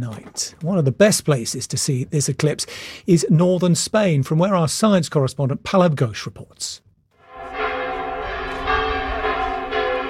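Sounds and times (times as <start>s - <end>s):
speech: 0.0s - 6.8s
large cathedral bells ringing in overlapping peals: 7.2s - 10.0s.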